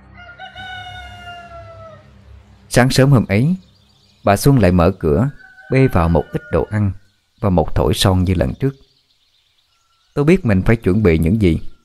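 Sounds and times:
rooster crowing: 0.0 - 2.2, 5.2 - 7.1
speech: 2.8 - 8.8, 10.2 - 11.7.

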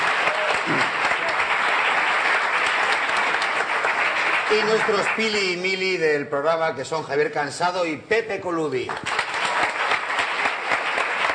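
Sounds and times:
studio audience applause for a guest: 0.0 - 6.0, 8.9 - 11.3
speech: 4.5 - 9.2.

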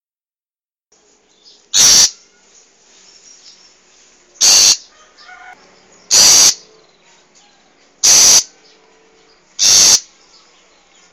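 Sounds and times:
wild long-tailed shrike harsh scratchy calls: 1.7 - 2.6, 4.4 - 6.7, 8.0 - 8.6, 9.6 - 10.2.

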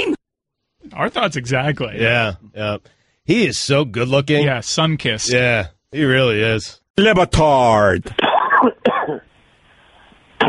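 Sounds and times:
speech: 1.0 - 9.3
person with allergies coughing: 8.2 - 9.3.

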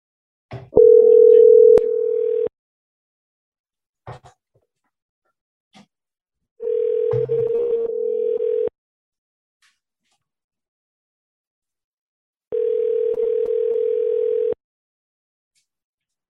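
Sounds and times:
telephone dial tone while placing a call: 0.8 - 2.5, 6.6 - 8.7, 12.5 - 14.6.

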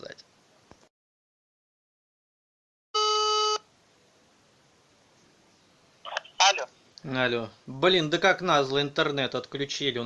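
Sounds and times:
outgoing call tone while dialling on a phone: 3.0 - 3.6
faint hiss: 3.6 - 10.0
speech: 6.5 - 10.0.

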